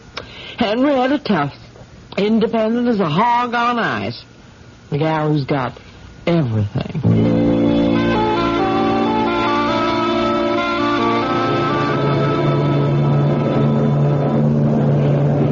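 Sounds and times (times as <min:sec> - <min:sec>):
speech: 0:00.6 - 0:01.6, 0:02.2 - 0:04.3, 0:04.9 - 0:07.3
cruise ship engines droning at sea: 0:07.1 - 0:15.5.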